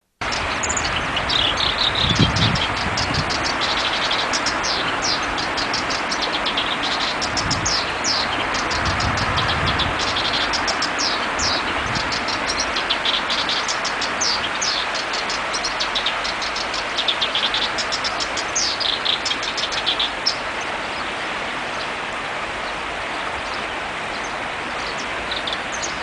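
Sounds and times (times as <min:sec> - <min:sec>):
black-browed reed warbler: 0:00.2 - 0:26.0.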